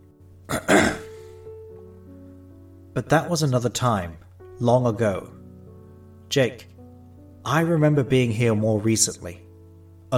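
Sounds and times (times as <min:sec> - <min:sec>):
faint steady hum: 0:00.0 - 0:10.1
person clearing throat: 0:00.5 - 0:01.2
speech: 0:03.0 - 0:05.4, 0:06.3 - 0:06.7, 0:07.4 - 0:09.4.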